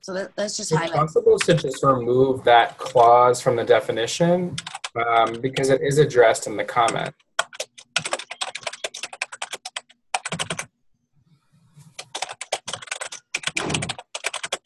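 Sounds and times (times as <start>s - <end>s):
speech: 0.0s - 7.2s
typing on a computer keyboard: 4.6s - 5.8s, 6.7s - 10.7s, 12.0s - 14.6s.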